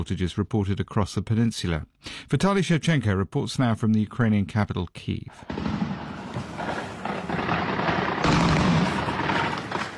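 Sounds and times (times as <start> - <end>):
speech: 0.0 - 5.7
air defences firing at drones: 5.4 - 9.9
rumbling booms and crackling bursts of air defence fire: 5.4 - 9.9.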